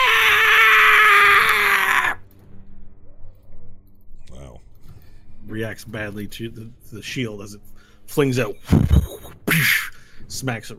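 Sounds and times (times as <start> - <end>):
person's voice imitating a screaming metal bird: 0.0 - 2.2
speech: 5.6 - 10.7.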